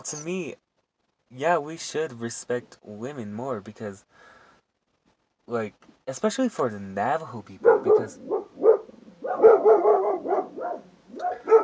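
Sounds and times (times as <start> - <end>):
speech: 0.0 - 0.6, 1.3 - 4.3, 5.5 - 8.4
male dogs barking: 7.6 - 11.6.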